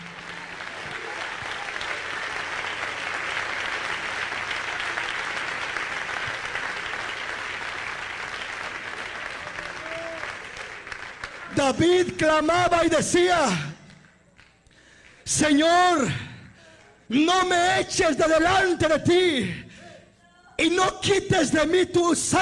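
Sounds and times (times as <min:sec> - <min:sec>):
church audience clapping during worship: 0:00.0 - 0:17.5
speech: 0:11.7 - 0:13.7, 0:15.4 - 0:16.2, 0:17.1 - 0:19.6, 0:20.6 - 0:22.4.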